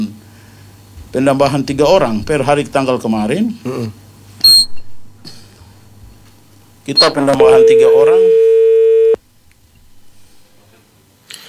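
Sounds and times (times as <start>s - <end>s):
speech: 1.1s - 4.0s, 6.9s - 8.6s
telephone busy tone after a call drops: 7.0s - 9.2s.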